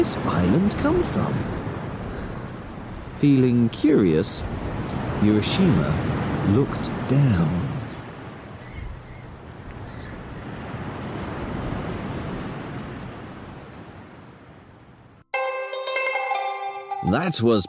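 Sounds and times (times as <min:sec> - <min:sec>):
speech: 0:00.0 - 0:01.6, 0:03.2 - 0:07.7, 0:17.1 - 0:17.6
enormous ocean waves rolling in surf: 0:00.0 - 0:15.2
music: 0:15.3 - 0:17.6.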